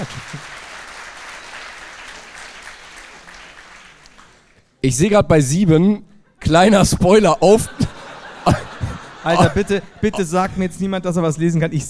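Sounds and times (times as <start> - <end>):
speech: 0.0 - 0.5, 4.8 - 7.8, 9.2 - 11.8
laughter: 0.0 - 0.6, 6.6 - 10.8
audience applause: 0.0 - 4.6.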